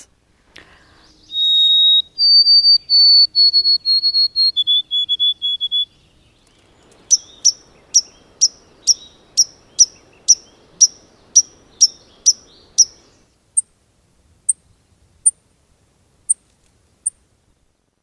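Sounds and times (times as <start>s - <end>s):
White-throated Sparrow whistled song of pure notes: 1.0s - 13.1s.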